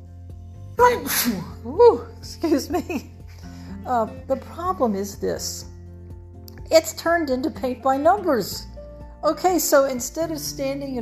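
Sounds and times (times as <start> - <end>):
speech: 0.8 - 3.1, 3.8 - 5.7, 6.7 - 11.0
person sneezing: 1.0 - 1.6.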